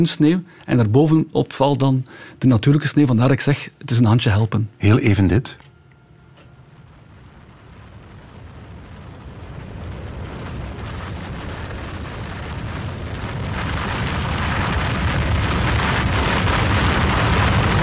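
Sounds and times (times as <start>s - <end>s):
speech: 0.0s - 5.6s
avalanche roaring down a mountain: 6.7s - 17.8s.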